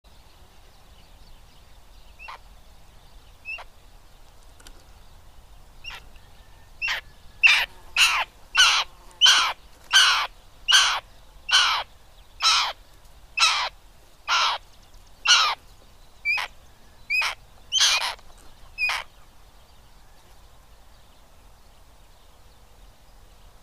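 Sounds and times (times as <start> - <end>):
Elanus caeruleus: 5.8 - 21.1.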